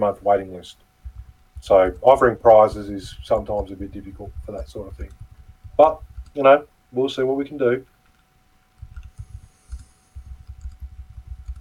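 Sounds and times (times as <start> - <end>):
speech: 0.0 - 0.9, 1.6 - 5.2, 5.8 - 7.9
rapid uneven typing on a keyboard: 1.0 - 6.4, 8.8 - 11.6.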